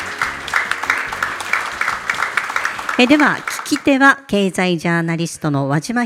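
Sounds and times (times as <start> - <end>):
audience applause from a sizable crowd: 0.0 - 4.0
speech: 3.0 - 6.0.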